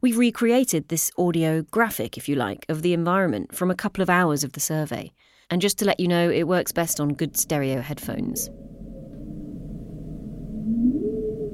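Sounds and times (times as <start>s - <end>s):
speech: 0.0s - 8.7s
low steady underwater rumble: 8.4s - 11.5s
humpback whale drawn-out tonal moan: 8.5s - 11.5s.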